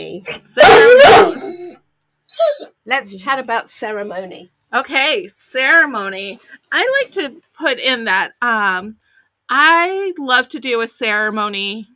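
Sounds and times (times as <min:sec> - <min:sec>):
dog bark: 0:00.6 - 0:01.6
speech: 0:02.9 - 0:11.9.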